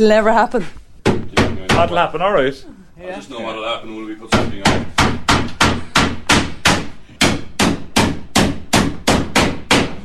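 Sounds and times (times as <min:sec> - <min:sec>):
speech: 0:00.0 - 0:00.8, 0:01.8 - 0:04.9
hammer blows while putting up shelving: 0:04.3 - 0:10.0.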